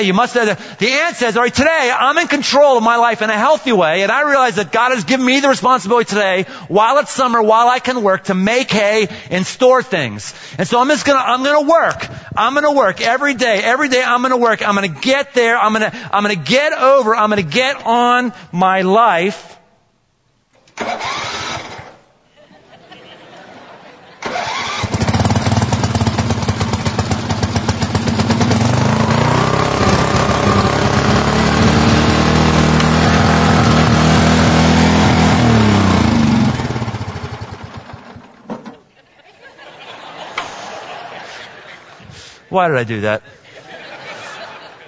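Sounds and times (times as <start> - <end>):
speech: 0.0 - 19.6, 42.5 - 43.4
small gas lawn mower engine running indoors: 20.7 - 22.0, 24.2 - 38.8
laughter: 22.3 - 24.4, 38.7 - 44.8.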